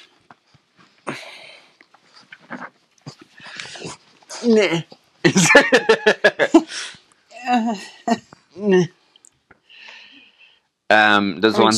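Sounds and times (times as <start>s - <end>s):
small dogs snuffling: 1.7s - 4.4s
speech: 4.4s - 6.8s, 11.2s - 11.7s
laughter: 5.3s - 6.9s.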